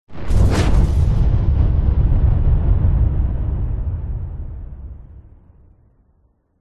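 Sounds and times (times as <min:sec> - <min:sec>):
incoming missile bomb whoosh in warfare: 0:00.1 - 0:02.2
large explosion: 0:00.1 - 0:06.2.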